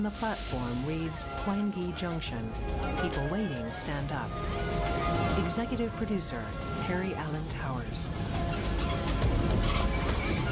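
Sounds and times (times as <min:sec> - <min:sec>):
speech: 0:00.0 - 0:08.7
steady low rumble of train at a junction platform: 0:00.0 - 0:10.5
train wheels squealing as the train pulls into a junction platform: 0:06.4 - 0:10.5.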